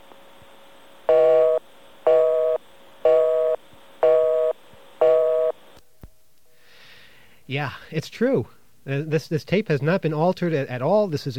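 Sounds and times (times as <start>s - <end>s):
American telephone busy signal: 1.1s - 5.6s
speech: 7.5s - 11.3s.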